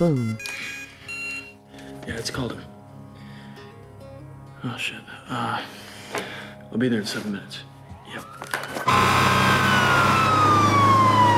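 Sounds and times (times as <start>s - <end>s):
speech: 0.0s - 0.8s, 2.1s - 2.7s, 4.6s - 9.4s
fire engine siren wailing outside a club: 7.9s - 11.3s.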